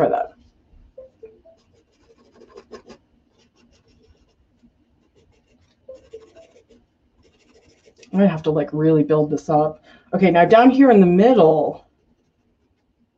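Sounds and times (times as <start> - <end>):
scraping a hard spot off a pencil: 1.5 - 8.2, 12.0 - 12.9
speech: 8.2 - 11.8.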